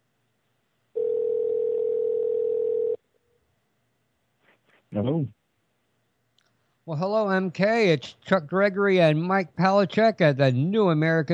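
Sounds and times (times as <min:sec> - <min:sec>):
telephone dial tone: 0:01.0 - 0:03.0
speech: 0:04.9 - 0:05.4, 0:06.9 - 0:11.3.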